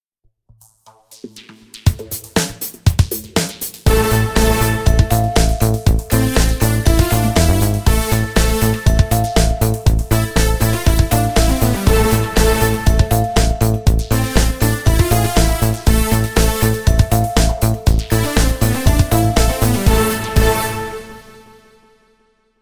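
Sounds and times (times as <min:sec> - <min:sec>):
Hisense E602M ringtone beat: 0:03.9 - 0:20.8.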